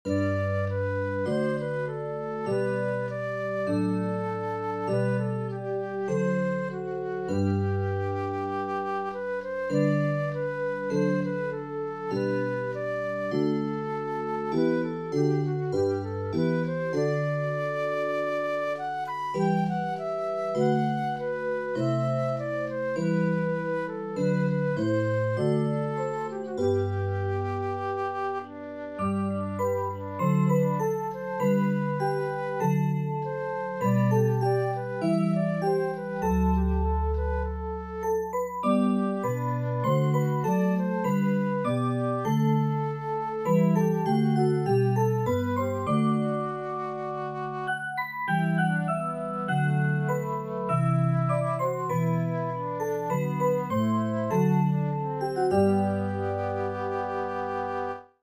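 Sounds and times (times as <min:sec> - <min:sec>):
flute: 0:00.0 - 0:58.2.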